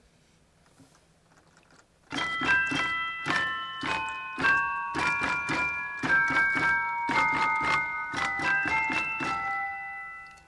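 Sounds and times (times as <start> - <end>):
bell-like celesta notes from a pipe organ stop: 2.1 - 10.4.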